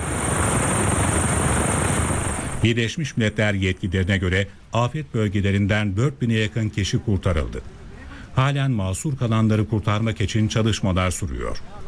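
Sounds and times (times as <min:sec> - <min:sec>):
helicopter flying over a disaster area, rotor and engine drone: 0:00.0 - 0:02.6
speech: 0:02.6 - 0:07.8, 0:08.4 - 0:11.8.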